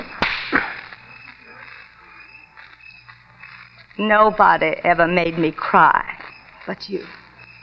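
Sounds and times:
slaps across the face: 0.0s - 0.9s
speech: 4.0s - 6.1s, 6.7s - 7.2s.

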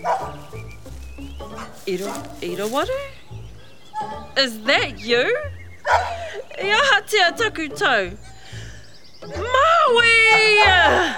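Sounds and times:
dog yelping bark: 0.0s - 0.4s, 5.8s - 6.2s
speech: 1.9s - 3.1s, 4.4s - 8.3s, 9.3s - 11.1s.

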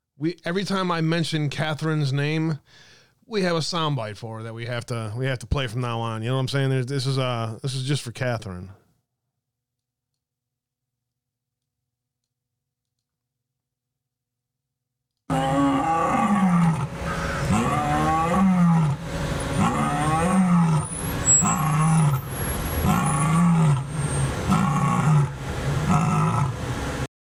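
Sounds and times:
speech: 0.2s - 8.8s
lioness roaring: 15.3s - 26.6s.

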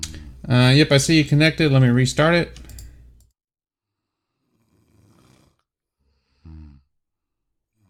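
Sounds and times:
speech: 0.5s - 2.6s
person snoring heavily: 4.0s - 6.9s, 7.7s - 7.8s.

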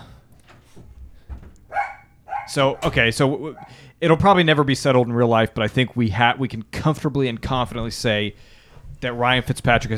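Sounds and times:
dog barking in short sharp yaps: 1.6s - 3.9s
speech: 2.5s - 9.9s.

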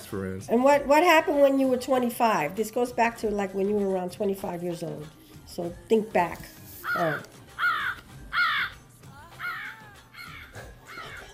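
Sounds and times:
speech: 0.1s - 7.4s
raven cawing: 6.8s - 11.3s.

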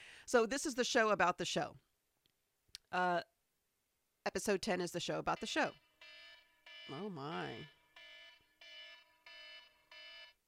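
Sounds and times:
speech: 0.3s - 1.9s, 2.9s - 3.3s, 4.2s - 5.8s, 6.9s - 7.8s
reminder alarm beeping with three bright electronic tones: 5.3s - 10.4s.

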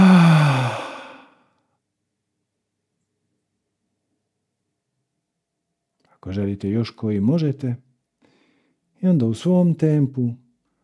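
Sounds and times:
strong deep exhale, loud breathy sigh: 0.0s - 1.3s
deep inhale: 0.0s - 1.4s
speech: 6.2s - 7.9s, 9.0s - 10.4s.

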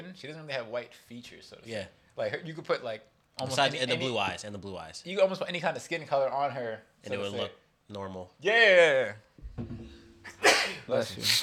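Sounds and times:
speech: 0.2s - 11.4s
sneeze: 10.2s - 11.4s.

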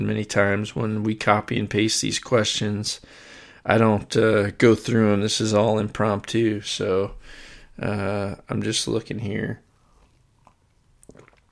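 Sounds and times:
speech: 0.0s - 9.6s
person sipping coffee: 9.8s - 11.5s
wet slurping and swallowing: 10.0s - 11.5s.

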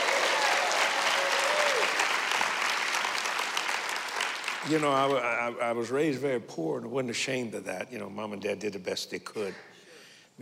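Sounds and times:
audience applause from a sizable crowd: 0.0s - 5.4s
speech: 4.6s - 9.7s.

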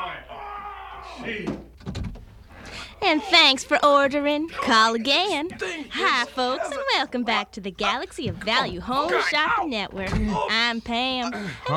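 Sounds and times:
speech: 1.2s - 2.0s, 3.0s - 11.7s
door thuds and clunks: 1.4s - 2.4s, 8.2s - 10.5s.

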